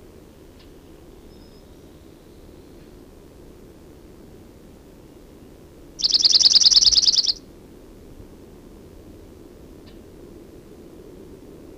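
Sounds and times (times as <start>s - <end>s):
Chipping Sparrow singing a rapid level trill of dry chips: 6.0s - 7.4s.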